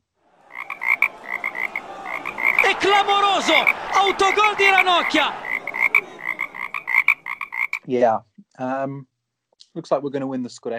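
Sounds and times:
laughter: 0.3 - 7.3
frog croaking in a rattling trill: 0.5 - 2.6, 5.4 - 7.8
speech: 2.8 - 5.4, 7.9 - 9.1, 9.8 - 10.7.

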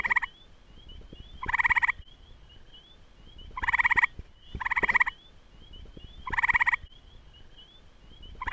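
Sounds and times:
gray tree frog trilling: 0.0 - 0.4, 1.0 - 2.0, 3.5 - 5.3, 6.2 - 6.9, 8.4 - 8.5.

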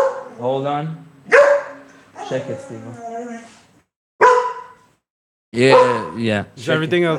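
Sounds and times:
dog barking: 0.0 - 0.4, 1.3 - 3.5, 4.2 - 4.9, 5.6 - 6.2
speech: 0.4 - 1.4, 2.3 - 3.5, 5.5 - 7.1.

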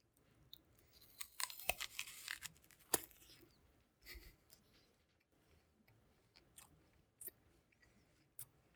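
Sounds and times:
crisp apple being bitten and chewed: 0.5 - 3.6.

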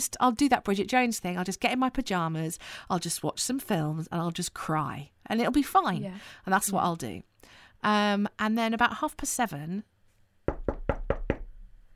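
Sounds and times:
speech: 0.0 - 9.9
knocking on a bedroom door: 10.5 - 11.6.

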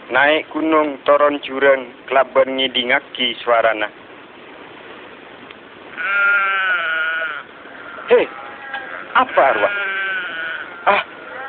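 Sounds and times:
faint hiss: 0.0 - 11.4
speech: 0.1 - 4.0, 8.1 - 8.4, 9.2 - 9.9, 10.8 - 11.1
single loud wavering goat bleat: 5.9 - 11.4.

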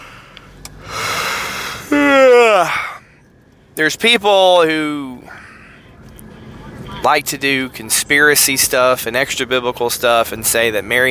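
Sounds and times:
person yawning: 1.7 - 3.0
speech: 3.8 - 5.4, 7.0 - 11.0.

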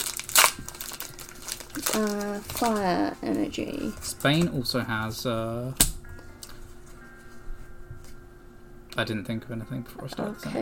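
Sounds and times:
crinkly foil trading card pack being opened: 0.0 - 5.2
speech: 1.8 - 5.9, 9.0 - 10.6.

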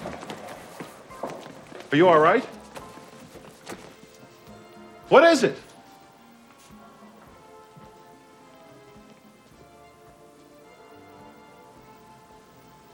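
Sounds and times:
rain pattering on a hard surface: 0.0 - 4.4
speech: 1.9 - 2.6, 5.1 - 5.6.

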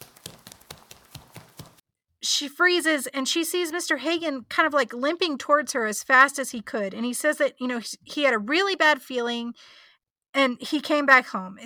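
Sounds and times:
fast running footsteps on a hard floor: 0.0 - 1.8
speech: 2.4 - 11.6.

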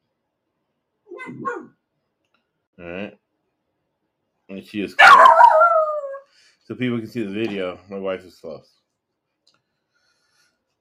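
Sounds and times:
speech: 1.3 - 1.8, 2.8 - 3.2, 4.5 - 5.6, 6.7 - 8.8
pet dog barking: 5.0 - 6.2.

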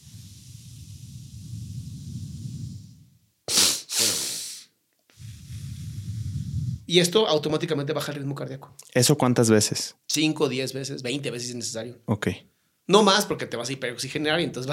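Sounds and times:
longer hissing exhale: 0.0 - 6.9
quick sharp sniffing nasal inhales: 0.0 - 6.9
speech: 6.9 - 14.7.

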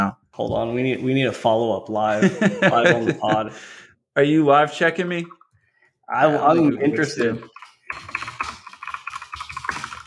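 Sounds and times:
speech: 0.4 - 5.4, 6.1 - 8.2
laughter: 2.1 - 3.6
computer keyboard typing: 7.4 - 10.0.

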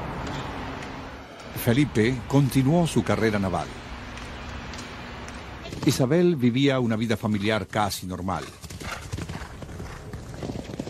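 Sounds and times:
speech: 1.6 - 3.8, 5.8 - 8.6
horse hooves clip-clopping: 4.1 - 10.8.

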